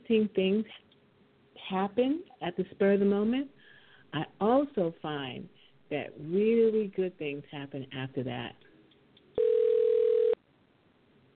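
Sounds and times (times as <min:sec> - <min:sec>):
speech: 0:00.1 - 0:00.8, 0:01.7 - 0:08.7
telephone ringing with a steady electronic tone: 0:09.4 - 0:10.4.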